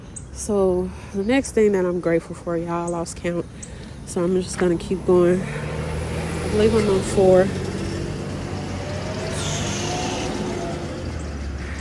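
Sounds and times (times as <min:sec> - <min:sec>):
speech: 0:00.4 - 0:05.7, 0:06.5 - 0:07.6
car passing by outside: 0:04.5 - 0:11.7.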